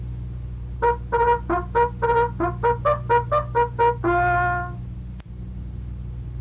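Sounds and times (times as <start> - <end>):
bugle call: 0.8 - 4.8.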